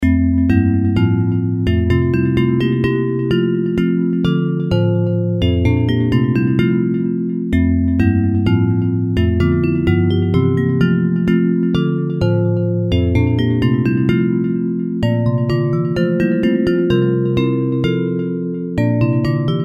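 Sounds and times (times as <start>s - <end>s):
bells: 0.0s - 19.6s.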